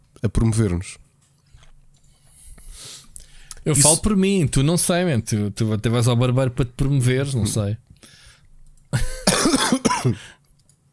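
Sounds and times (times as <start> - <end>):
speech: 0.2 - 1.1, 3.6 - 8.2, 10.0 - 10.4
man choking and coughing with gagging sounds: 9.0 - 10.4.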